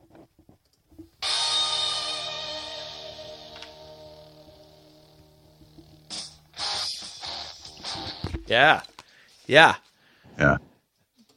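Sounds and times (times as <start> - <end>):
music played through headphones held up to a microphone: 0.0 - 8.8
speech: 8.5 - 8.9, 9.5 - 9.8, 10.4 - 10.7.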